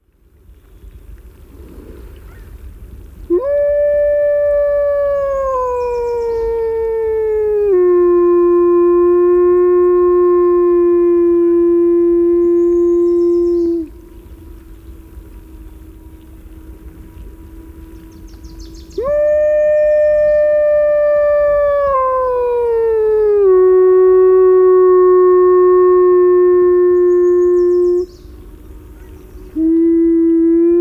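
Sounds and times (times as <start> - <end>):
wolves howling to each other: 3.3 - 14.0, 18.0 - 30.7.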